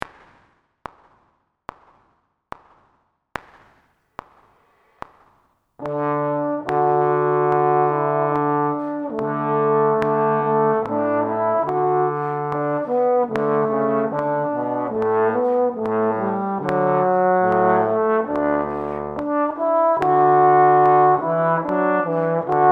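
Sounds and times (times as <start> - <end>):
trombone in D major: 5.8 - 22.7.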